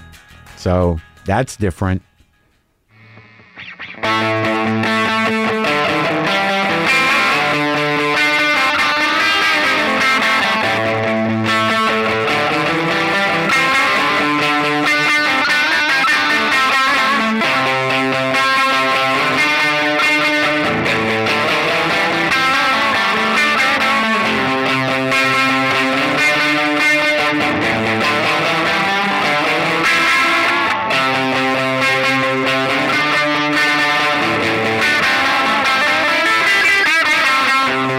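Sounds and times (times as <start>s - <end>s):
musical riff played through an echo box: 0.0s - 37.9s
speech: 0.6s - 2.1s.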